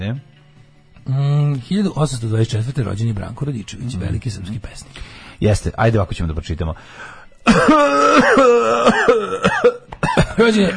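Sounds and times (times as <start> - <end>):
speech: 0.0 - 0.3, 1.0 - 9.8, 10.4 - 10.7
shallow dry hacking coughs: 7.4 - 10.7.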